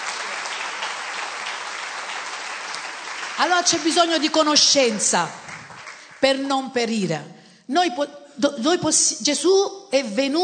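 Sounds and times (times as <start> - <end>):
church congregation clapping: 0.0 - 6.4
speech: 3.4 - 5.5, 6.2 - 10.4.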